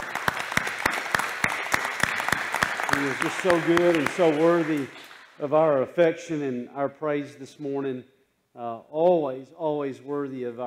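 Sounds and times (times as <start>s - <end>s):
crowd clapping in rhythm: 0.0s - 5.8s
speech: 3.0s - 10.6s.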